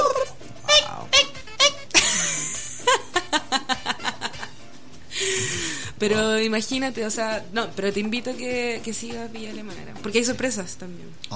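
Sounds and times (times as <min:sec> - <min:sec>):
voice imitating peacock cries: 0:00.0 - 0:01.9
rhythmic laughter bursts: 0:00.0 - 0:05.8
speech: 0:06.0 - 0:11.3.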